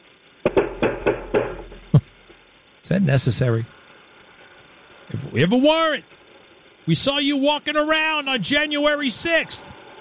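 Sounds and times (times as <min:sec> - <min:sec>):
SWAT team of FBI agents knocking heavily on a door: 0:00.5 - 0:02.0
speech: 0:02.8 - 0:03.8, 0:05.3 - 0:06.1, 0:06.9 - 0:09.8.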